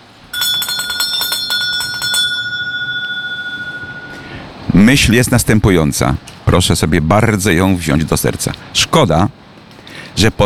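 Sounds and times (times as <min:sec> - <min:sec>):
small bell ringing: 0:00.3 - 0:04.4
speech: 0:04.8 - 0:09.4, 0:10.2 - 0:10.4.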